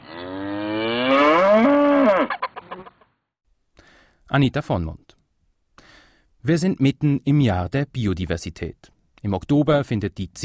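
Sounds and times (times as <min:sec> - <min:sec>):
dairy cow mooing on pasture: 0:00.0 - 0:02.9
speech: 0:04.3 - 0:05.1, 0:06.4 - 0:10.4.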